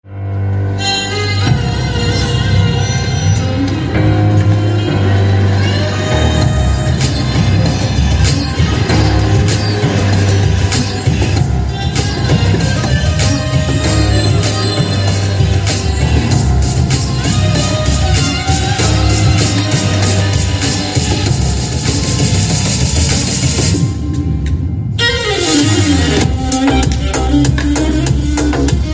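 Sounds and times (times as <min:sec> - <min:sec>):
violin background music: 0:00.3 - 0:28.9.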